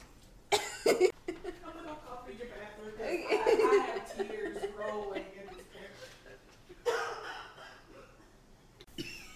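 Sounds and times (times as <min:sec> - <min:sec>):
coughing fit from a tickle in the throat: 0:00.5 - 0:01.1, 0:06.8 - 0:08.3
laughter: 0:03.0 - 0:06.8.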